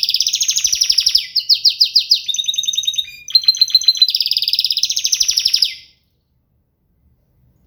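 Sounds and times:
canary song with rapid repeated trilled tours: 0.0s - 6.1s.

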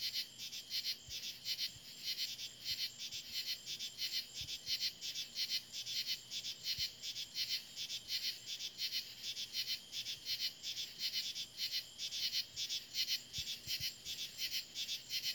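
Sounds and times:
insect chorus: 0.0s - 15.3s.

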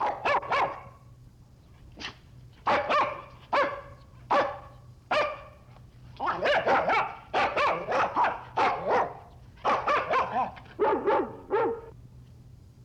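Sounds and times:
small dog barking: 0.0s - 1.0s, 2.6s - 5.6s, 6.2s - 12.0s.

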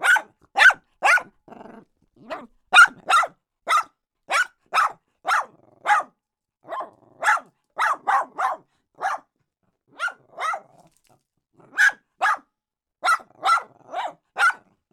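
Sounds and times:
small dog barking: 0.0s - 11.0s, 11.6s - 14.7s.

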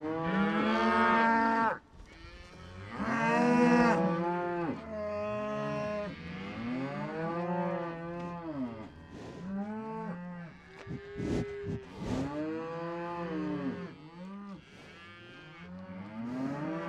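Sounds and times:
cattle mooing: 0.0s - 16.8s
cows breathing on the microphone: 8.2s - 12.6s, 14.4s - 15.3s.

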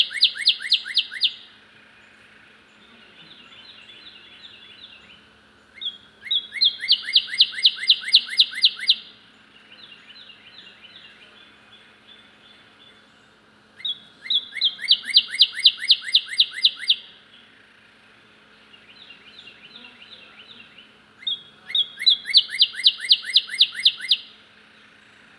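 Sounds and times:
loud male Northern cardinal singing fast repeated slurred whistles: 0.0s - 1.5s, 6.3s - 9.1s, 13.8s - 17.1s, 21.2s - 24.4s.

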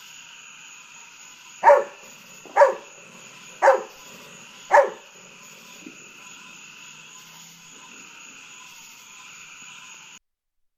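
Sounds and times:
golden retriever barking at fireworks at nighttime: 1.6s - 6.1s
high background hum: 1.6s - 8.4s.

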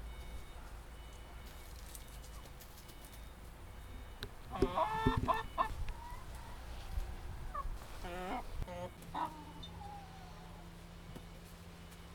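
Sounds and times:
low rumbling background noise: 0.0s - 12.1s
laying hens clucking: 3.9s - 10.8s.

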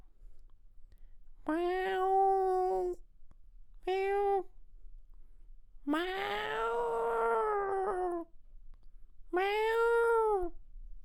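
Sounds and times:
domestic cat in heat giving wailing meows: 1.5s - 2.9s, 5.9s - 8.3s, 9.3s - 10.5s.

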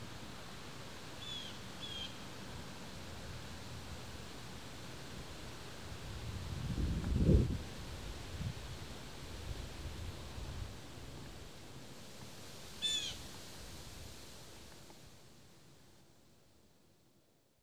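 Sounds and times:
low autumn wind: 0.0s - 15.7s
blue jay short raspy call in autumn: 12.8s - 13.2s.

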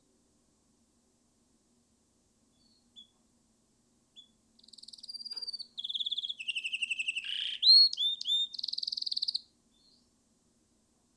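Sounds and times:
canary singing varied tours: 2.6s - 3.2s, 4.2s - 10.0s.

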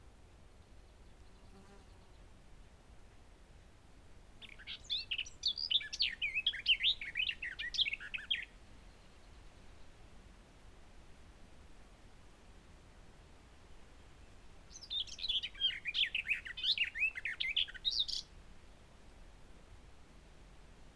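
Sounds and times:
Garden warbler song: 4.4s - 9.4s, 14.7s - 18.3s.

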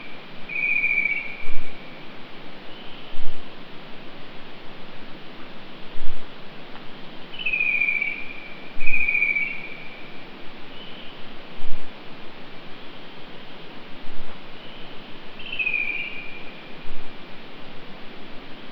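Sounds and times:
steady hiss: 0.0s - 18.7s
bird whistling at night: 0.5s - 1.7s, 7.3s - 10.0s, 14.6s - 16.5s.

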